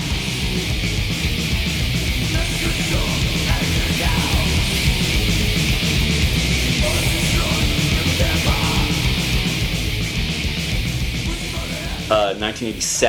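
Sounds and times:
heavily distorted death metal guitars: 0.0 - 13.0
pounding rapid death metal drums: 0.0 - 13.0.

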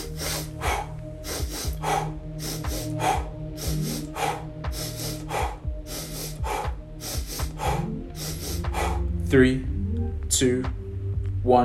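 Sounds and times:
quick paired sniffs of a double inhale breathing exercise: 0.0 - 9.0
short blown breath of a single exhale: 0.0 - 9.0
low sustained music bed: 0.0 - 11.6
speech: 9.3 - 9.7, 10.4 - 10.8, 11.4 - 11.6.

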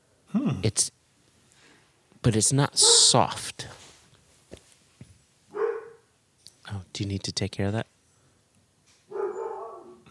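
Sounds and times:
speech: 0.3 - 1.0, 2.2 - 3.7, 7.0 - 8.0
dog barking: 2.8 - 3.4, 5.5 - 6.1, 9.1 - 10.0.

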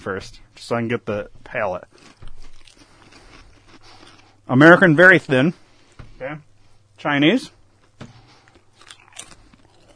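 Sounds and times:
speech: 0.0 - 2.2, 4.5 - 5.6, 6.2 - 8.1
potato chips being bitten and chewed: 1.8 - 4.4, 8.4 - 9.9.

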